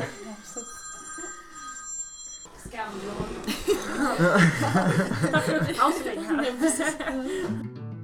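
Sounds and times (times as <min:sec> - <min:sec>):
telephone ringing with a high electronic trill: 0:00.0 - 0:03.2
speech: 0:02.7 - 0:07.8
laughter: 0:03.4 - 0:07.6.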